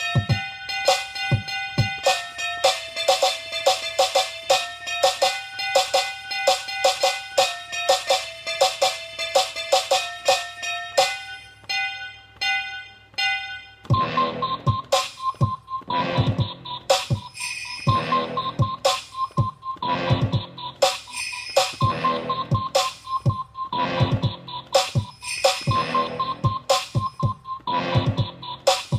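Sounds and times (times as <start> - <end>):
Christmas beat: 0.0 - 28.9.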